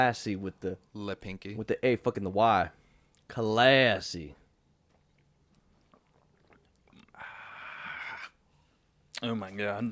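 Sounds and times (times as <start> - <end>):
speech: 0.0 - 4.4, 9.2 - 9.9
soft wet mouth clicks: 4.9 - 7.2
loud hissy slurping gulp of wine: 5.8 - 8.4.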